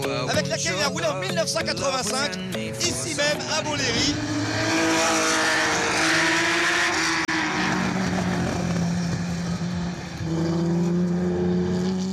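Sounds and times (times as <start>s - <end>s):
speech: 0.3s - 5.6s
racing car engine roar at speed on the Montlhéry circuit: 3.4s - 12.1s.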